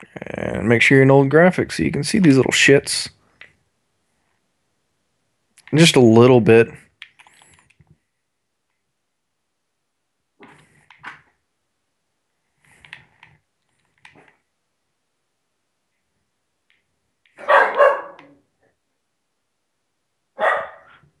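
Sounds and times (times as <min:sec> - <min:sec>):
speech: 0:00.0 - 0:03.2, 0:05.7 - 0:06.8
dog barking: 0:17.4 - 0:18.4, 0:20.4 - 0:21.0.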